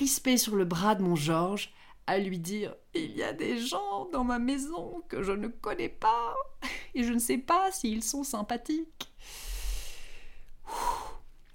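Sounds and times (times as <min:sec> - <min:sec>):
speech: 0:00.0 - 0:09.5, 0:10.7 - 0:11.1
deep breathing: 0:09.2 - 0:11.3.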